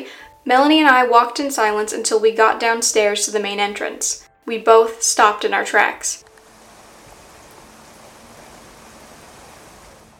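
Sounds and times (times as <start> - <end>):
speech: 0.4 - 6.3
steady dense rain pouring: 6.2 - 10.1.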